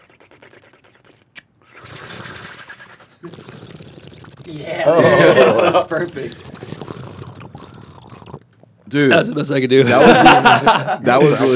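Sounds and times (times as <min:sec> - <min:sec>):
speech: 0:03.2 - 0:03.6, 0:04.5 - 0:06.6, 0:08.9 - 0:11.5
water bubbling to mimic a bong: 0:03.2 - 0:04.7, 0:05.8 - 0:08.4
laughter: 0:04.7 - 0:06.3, 0:09.8 - 0:11.5.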